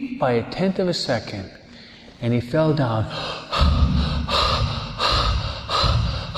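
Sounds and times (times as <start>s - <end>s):
speech: 0.2s - 1.6s, 2.2s - 4.0s
person gasping for breath: 3.1s - 6.3s.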